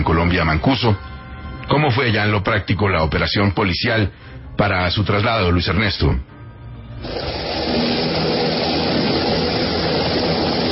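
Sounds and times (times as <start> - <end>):
speech: 0.1 - 1.1, 1.7 - 6.3, 7.0 - 7.9
Black Hawk and police helicopter rotors and engines in Bogotá: 7.1 - 10.6.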